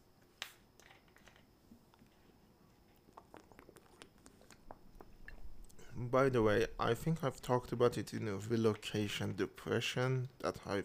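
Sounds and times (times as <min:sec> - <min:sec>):
faint hiss: 0:00.0 - 0:10.8
person sipping a watermelon syrup and water mixture: 0:03.0 - 0:06.0
small wet clicks and mouth noises: 0:03.1 - 0:05.8
speech: 0:06.0 - 0:10.8.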